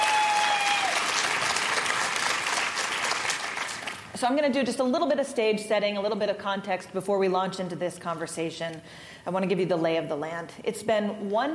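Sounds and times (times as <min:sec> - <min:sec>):
audience applause: 0:00.0 - 0:04.1
speech: 0:04.2 - 0:11.5.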